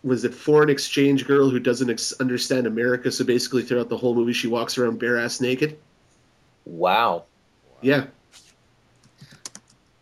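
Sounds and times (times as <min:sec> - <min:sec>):
speech: 0:00.0 - 0:05.9, 0:06.7 - 0:08.4
typing on a computer keyboard: 0:09.0 - 0:09.8.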